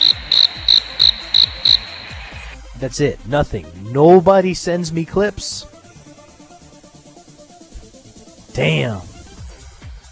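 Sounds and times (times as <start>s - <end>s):
crickets chirping: 0.0s - 2.6s
speech: 2.8s - 5.7s, 8.6s - 9.1s.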